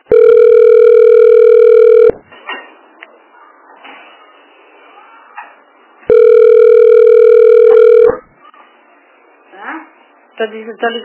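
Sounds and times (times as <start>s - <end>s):
faint noise: 0.0s - 11.0s
telephone ringback tone while calling a health clinic: 0.1s - 2.2s, 6.1s - 8.2s.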